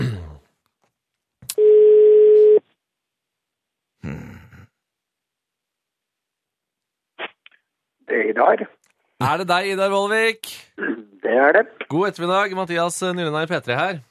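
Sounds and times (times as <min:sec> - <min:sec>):
telephone ringing tone while dialing a call: 0:01.6 - 0:02.6
speech: 0:08.4 - 0:14.0.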